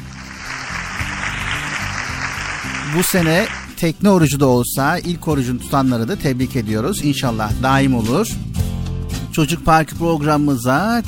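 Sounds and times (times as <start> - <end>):
audience applause for children on a kids' program: 0.0 - 3.8
speech: 2.9 - 8.5, 9.4 - 11.0.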